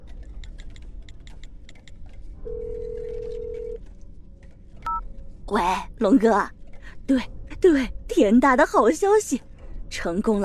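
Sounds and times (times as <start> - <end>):
telephone dial tone: 2.5 - 3.8
speech: 5.5 - 10.4.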